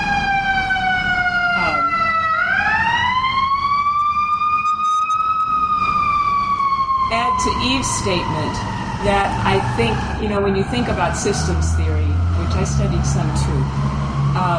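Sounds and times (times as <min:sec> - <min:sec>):
fire truck siren wailing outside: 0:00.0 - 0:14.5
low rumble of traffic: 0:00.0 - 0:14.5
speech: 0:07.8 - 0:14.5.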